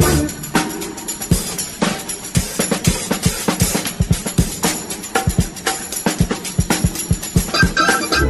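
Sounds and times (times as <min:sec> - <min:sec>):
funky drum loop: 0:00.0 - 0:08.2
organ lead: 0:07.5 - 0:08.2.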